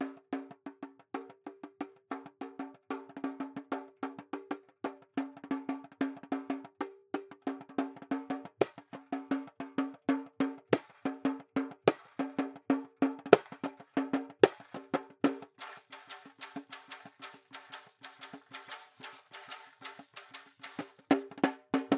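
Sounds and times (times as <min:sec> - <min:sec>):
sea drum: 0:02.5 - 0:21.9.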